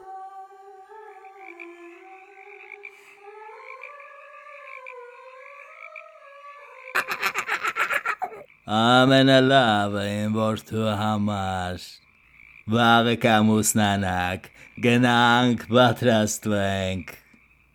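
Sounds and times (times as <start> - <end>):
toad croaking: 1.2 - 17.7
laughter: 7.0 - 8.4
speech: 8.7 - 12.0, 12.7 - 17.2.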